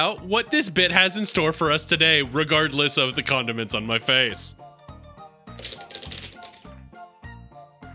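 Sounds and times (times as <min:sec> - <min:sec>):
speech: 0:00.0 - 0:04.7
clattery shuffling of cards or tiles: 0:05.6 - 0:06.8.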